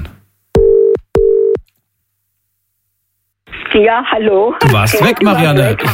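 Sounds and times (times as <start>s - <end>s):
short steady electronic phone tones: 0.6s - 1.6s
speech: 3.8s - 5.9s.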